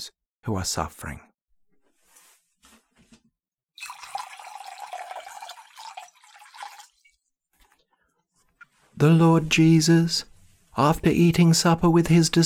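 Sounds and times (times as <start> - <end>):
speech: 0.0 - 1.3, 9.0 - 12.4
water poured during a ritual washing of feet: 3.8 - 7.8.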